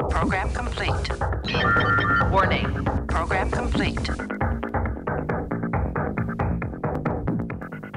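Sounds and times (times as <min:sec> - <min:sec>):
speech: 0:00.2 - 0:04.5
upbeat instrumental podcast theme tune with beats, deep bass and synth chords: 0:01.3 - 0:07.9.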